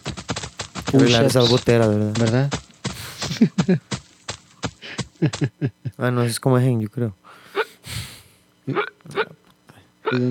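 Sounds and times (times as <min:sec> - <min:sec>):
speech: 0:00.9 - 0:02.6, 0:03.4 - 0:03.9, 0:05.2 - 0:07.2, 0:08.7 - 0:09.2
laughter: 0:03.0 - 0:03.9, 0:04.8 - 0:06.0
person hiccuping: 0:08.7 - 0:09.4.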